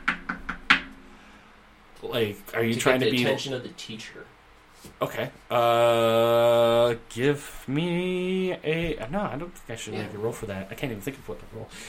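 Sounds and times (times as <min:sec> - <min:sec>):
knuckles rapping on a door: 0:00.0 - 0:00.9
speech: 0:02.0 - 0:11.8.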